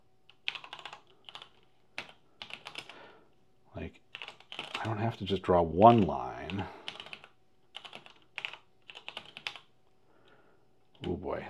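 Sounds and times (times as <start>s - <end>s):
clicky keystrokes on a computer keyboard: 0.3s - 3.0s, 4.1s - 4.9s, 6.4s - 9.7s, 10.9s - 11.2s
speech: 3.8s - 4.0s, 4.8s - 6.8s.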